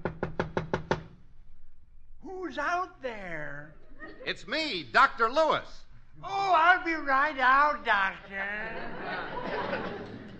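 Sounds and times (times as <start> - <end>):
knocking on a wooden house door: 0.0 - 1.2
speech: 2.5 - 10.1
laughter: 3.7 - 4.5, 7.9 - 10.3.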